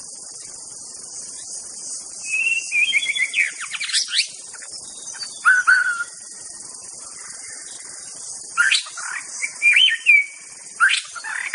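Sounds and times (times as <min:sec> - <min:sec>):
constant high insect drone: 0:00.0 - 0:11.5
White-rumped Shama singing slurred whistled notes in forest: 0:02.2 - 0:06.4, 0:08.5 - 0:11.5.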